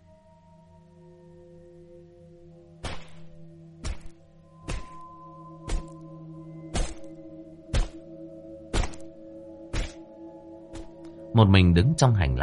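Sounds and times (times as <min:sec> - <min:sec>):
bone chopping thunks inside an apartment: 0:02.8 - 0:05.1, 0:05.7 - 0:06.0, 0:06.7 - 0:07.1, 0:07.7 - 0:08.0, 0:08.7 - 0:09.1, 0:09.7 - 0:10.0
speech: 0:11.4 - 0:12.4.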